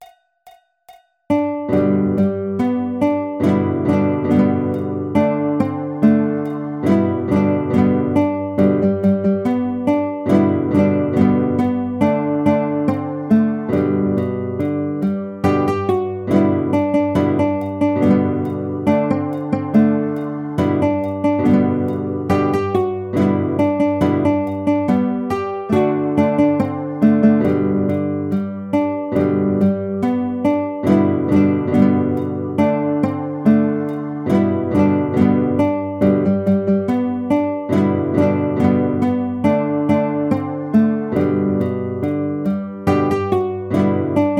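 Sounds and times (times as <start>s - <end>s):
guitar playing: 0.0s - 0.6s, 1.3s - 44.3s.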